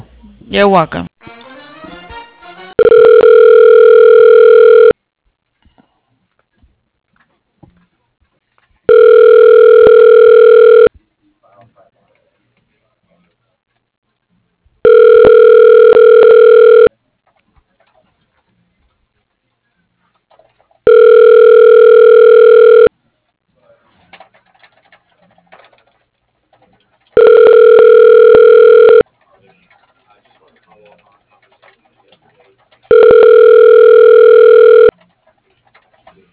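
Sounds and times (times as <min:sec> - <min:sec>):
speech: 0:00.5 - 0:01.1
telephone ringback tone while a call is transferred to an extension: 0:02.8 - 0:05.0, 0:08.9 - 0:10.9, 0:14.8 - 0:16.9, 0:20.9 - 0:22.9, 0:27.2 - 0:29.0, 0:32.9 - 0:34.9.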